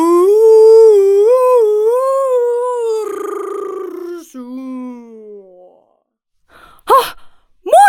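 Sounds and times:
walrus moaning in a backyard: 0.4s - 6.0s.

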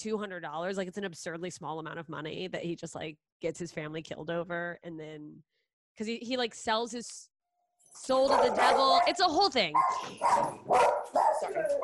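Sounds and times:
speech: 0.0s - 7.3s, 7.9s - 11.8s
two dogs barking at the mailman: 8.2s - 11.8s.

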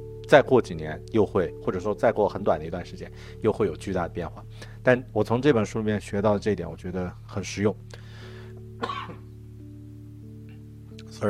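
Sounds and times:
speech: 0.3s - 8.0s, 8.8s - 9.2s
person with a cold coughing: 8.8s - 9.3s.

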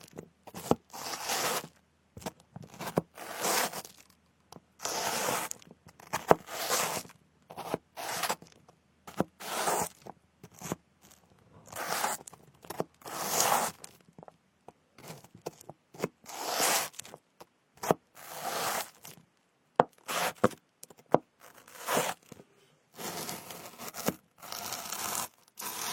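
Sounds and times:
dry tearing and scraping of fruit being cut and ears being picked: 0.6s - 1.8s, 2.7s - 4.2s, 4.8s - 8.6s, 9.4s - 14.0s, 16.2s - 17.1s, 18.2s - 19.2s, 20.0s - 20.6s, 21.4s - 25.9s.

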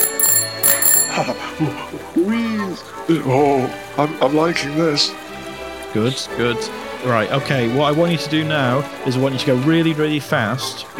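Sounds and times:
bicycle bell ringing: 0.0s - 1.6s
speech: 1.2s - 5.2s, 5.9s - 10.9s.

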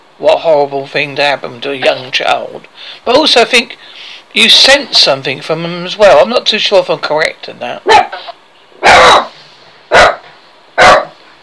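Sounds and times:
speech: 0.2s - 9.3s
dog barking happily: 7.9s - 11.2s.

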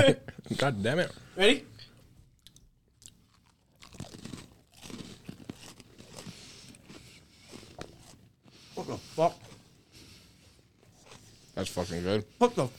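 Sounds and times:
speech: 0.0s - 1.7s, 8.8s - 9.4s, 11.6s - 12.7s
person chewing crunchy chocolate key lime cookies: 2.3s - 12.0s.

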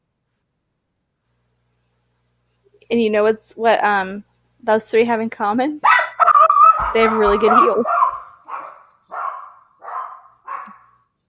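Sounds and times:
speech: 2.8s - 5.9s, 6.8s - 8.0s
dogs barking: 5.8s - 11.0s.

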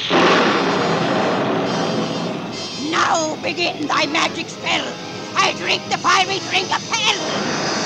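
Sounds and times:
thunderbolt sound effect in a radio drama: 0.0s - 2.6s
speech: 3.5s - 7.7s.

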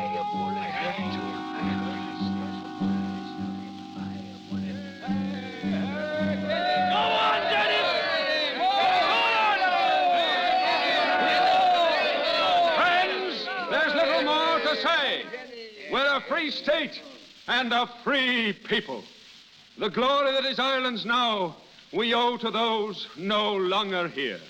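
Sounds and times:
steady droning tone: 0.0s - 7.0s
large crowd murmuring in a town square meeting: 0.0s - 15.5s
speech: 16.2s - 19.2s, 19.8s - 24.4s.

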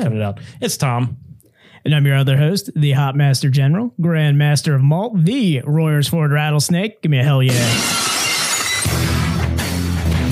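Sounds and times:
speech: 0.0s - 8.2s
glass shattering: 7.5s - 9.3s
dense tinkling spray of glass shards: 7.6s - 8.9s.

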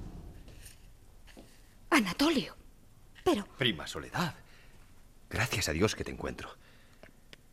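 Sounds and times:
footsteps on a hard surface beside a garden wall door: 1.3s - 1.6s
speech: 2.0s - 2.6s, 3.3s - 4.4s, 5.3s - 6.7s.

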